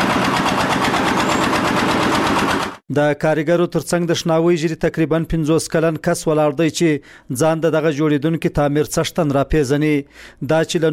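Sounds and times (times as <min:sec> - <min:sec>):
machine lifting bricks at a building construction site: 0:00.0 - 0:02.8
speech: 0:02.9 - 0:10.9.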